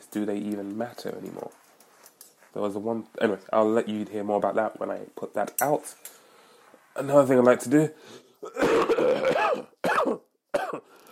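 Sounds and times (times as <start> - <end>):
speech: 0.1 - 1.6, 2.5 - 6.2, 7.0 - 9.7
person coughing: 8.4 - 10.9
throat clearing: 8.4 - 10.9.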